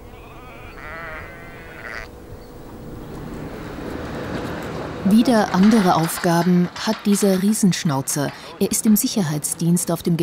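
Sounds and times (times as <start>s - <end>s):
flock of sheep bleating: 0.0s - 2.1s
speech: 5.1s - 10.2s.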